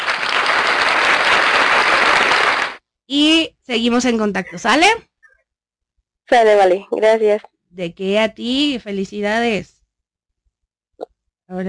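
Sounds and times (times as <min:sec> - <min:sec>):
crowd applause: 0:00.0 - 0:02.8
speech: 0:03.1 - 0:05.1, 0:06.3 - 0:09.8, 0:11.0 - 0:11.6.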